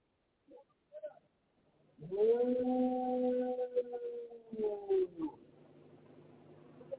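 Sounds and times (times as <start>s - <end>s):
dog howling: 2.0s - 5.4s.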